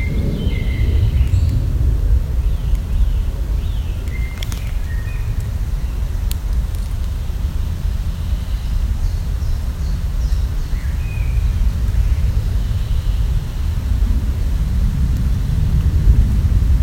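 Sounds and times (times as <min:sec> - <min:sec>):
steady low rumble of traffic by a botanical garden in Istanbul Turkey: 0:00.0 - 0:16.8
sharp clicks: 0:04.0 - 0:07.2.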